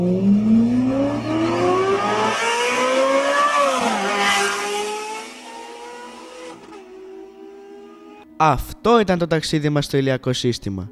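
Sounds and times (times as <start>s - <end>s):
Formula 1 race car speeding past: 0.0s - 8.2s
speech: 8.4s - 10.9s.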